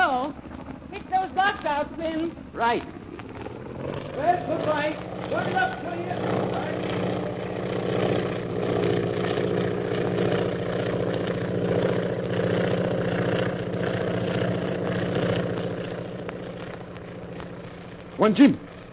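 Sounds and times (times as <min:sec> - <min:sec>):
propeller airplane engine droning: 0:00.0 - 0:18.9
speech: 0:01.6 - 0:03.0, 0:04.2 - 0:06.8, 0:18.2 - 0:18.6.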